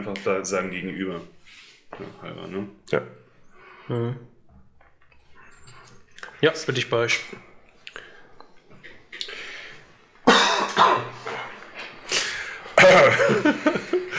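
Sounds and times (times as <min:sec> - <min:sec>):
speech: 0:00.0 - 0:03.2, 0:03.9 - 0:04.3, 0:06.4 - 0:07.5
person coughing: 0:10.2 - 0:11.3, 0:12.8 - 0:13.5
laughter: 0:11.1 - 0:14.1.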